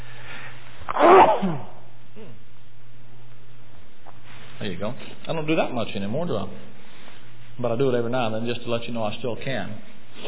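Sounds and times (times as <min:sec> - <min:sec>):
person sneezing: 0:00.9 - 0:02.4
speech: 0:04.8 - 0:06.7, 0:07.6 - 0:10.2.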